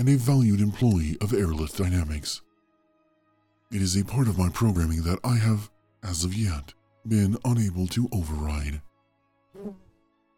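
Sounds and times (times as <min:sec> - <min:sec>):
speech: 0:00.0 - 0:02.5, 0:03.7 - 0:08.9, 0:09.6 - 0:09.8
bee buzzing past: 0:09.6 - 0:09.9.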